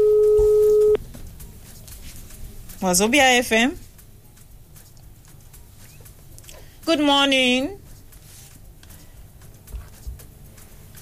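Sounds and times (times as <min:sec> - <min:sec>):
phone line tone as a call connects: 0:00.0 - 0:01.0
speech: 0:02.8 - 0:03.8, 0:06.9 - 0:07.8.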